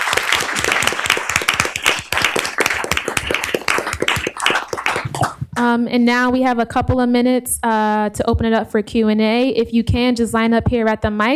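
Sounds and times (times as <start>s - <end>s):
crowd applauding a panel: 0.0s - 5.4s
speech: 5.7s - 11.3s.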